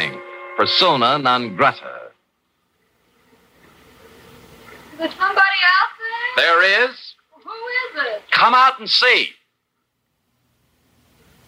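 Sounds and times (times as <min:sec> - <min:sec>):
speech: 0:00.6 - 0:02.0, 0:05.0 - 0:05.8, 0:06.4 - 0:09.4
shower spraying water: 0:02.6 - 0:08.2.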